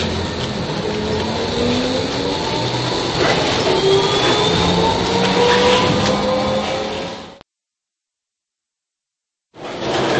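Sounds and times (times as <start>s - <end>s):
tram rumbling and rattling along its tracks: 0.0s - 7.4s, 9.6s - 10.1s.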